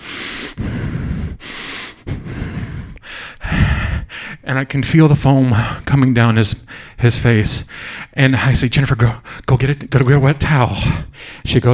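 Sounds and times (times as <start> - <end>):
voice imitating a man breathing hard through his nose: 0.0 - 4.5, 5.5 - 5.9, 6.6 - 7.0, 7.6 - 8.2, 10.8 - 11.5
speech: 4.5 - 11.7.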